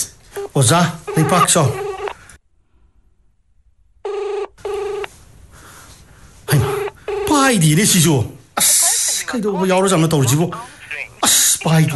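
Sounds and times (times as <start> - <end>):
telephone ringing with an electronic trill: 0.3 - 2.2, 4.0 - 5.2, 6.5 - 8.0
speech: 0.5 - 1.8, 7.5 - 8.7, 9.3 - 11.9.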